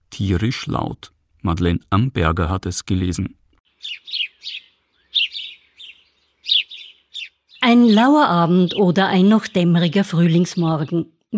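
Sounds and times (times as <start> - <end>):
speech: 0.2 - 4.6, 7.6 - 11.3
blackbird singing: 3.7 - 11.0.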